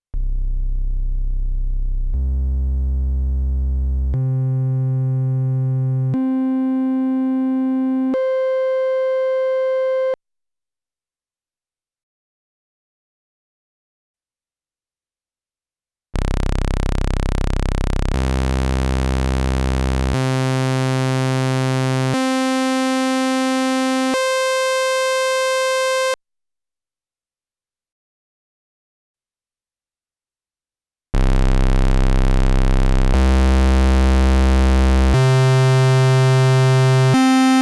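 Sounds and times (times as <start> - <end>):
single synthesizer waveform: 0.2 - 10.2, 16.2 - 26.2, 31.2 - 37.6.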